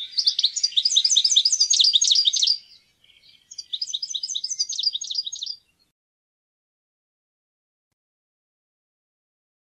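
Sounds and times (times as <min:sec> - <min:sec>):
European goldfinch twittering: 0:00.0 - 0:05.6.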